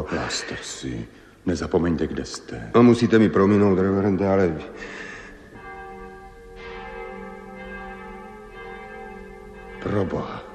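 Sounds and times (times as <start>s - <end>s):
speech: 0.0s - 5.1s, 9.9s - 10.4s
church bells ringing with shimmering overtones: 2.8s - 10.5s.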